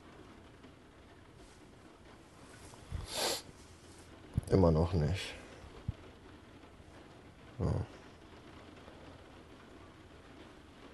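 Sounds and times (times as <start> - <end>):
soft steady rain falling outdoors: 0.0 - 10.9
speech: 4.5 - 5.4, 7.6 - 8.0.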